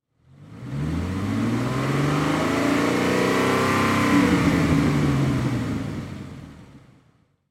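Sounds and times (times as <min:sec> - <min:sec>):
Ford Mustang GT 500 KR engine revving: 0:00.2 - 0:06.6.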